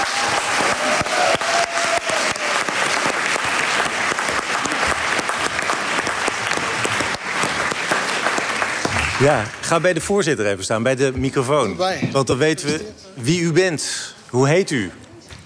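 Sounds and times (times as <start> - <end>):
audience applause at a poetry gathering: 0.0 - 10.0
speech: 9.2 - 15.0.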